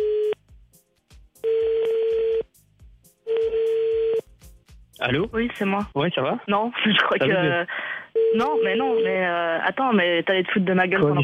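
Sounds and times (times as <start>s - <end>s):
telephone ringing tone beeps while calling a home: 0.0s - 0.4s, 1.4s - 2.4s, 3.3s - 4.2s, 8.2s - 9.3s
speech: 5.0s - 11.2s.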